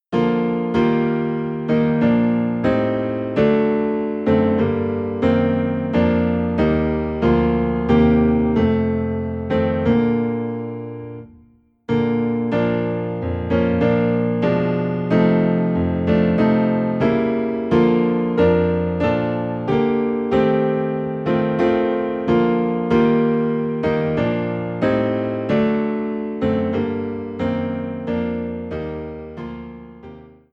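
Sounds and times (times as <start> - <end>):
low piano in B flat: 0.0 - 30.5.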